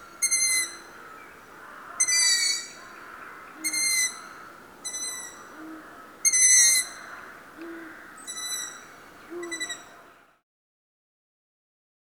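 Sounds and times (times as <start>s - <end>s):
Long-eared owl giving squeaky creaking calls: 0.0s - 0.9s, 2.0s - 2.8s, 3.6s - 9.9s.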